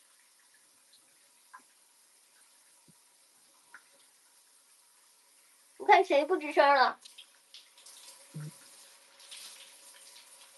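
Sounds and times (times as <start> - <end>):
speech: 5.9 - 7.2
shower water spraying: 6.8 - 10.5.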